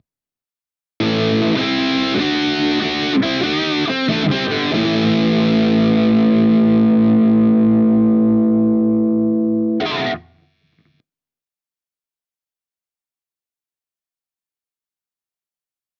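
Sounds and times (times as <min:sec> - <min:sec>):
guitar riff: 0:01.0 - 0:10.4.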